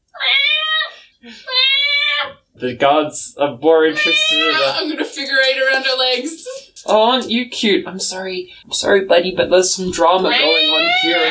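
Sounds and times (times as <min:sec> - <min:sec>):
person imitating cat with nasal meows: 0:00.2 - 0:02.4, 0:03.9 - 0:04.8, 0:10.3 - 0:11.2
speech: 0:02.6 - 0:11.2
laughter: 0:03.8 - 0:06.8.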